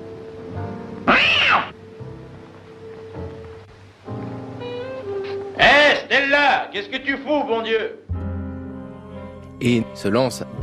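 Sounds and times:
cat yowling: 1.0 - 1.8
speech: 6.1 - 8.0, 9.6 - 10.5.

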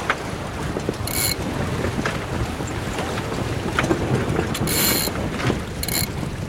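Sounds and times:
wind roaring across a sailboat deck: 0.0 - 6.4
rattling sailboat gear: 1.1 - 1.4, 4.5 - 5.2, 5.8 - 6.2.

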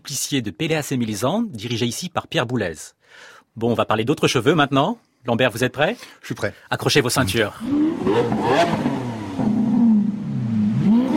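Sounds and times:
speech: 0.0 - 8.9
car engine revving and accelerating: 7.2 - 11.1.

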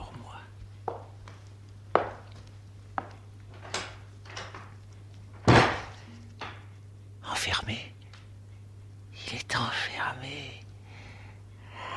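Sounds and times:
low steady hum: 0.0 - 11.9
heavier thump of door: 5.4 - 6.0.

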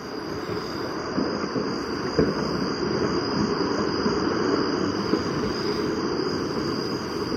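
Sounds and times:
night crickets chirping: 0.0 - 7.3.

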